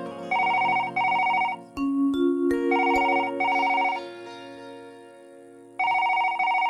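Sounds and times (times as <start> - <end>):
bright electronic ring bursts of a mobile phone: 0.3 - 1.7, 2.7 - 4.0, 5.8 - 6.6
mobile phone melodic ringback tune on an outgoing call: 0.3 - 4.1, 5.8 - 6.6.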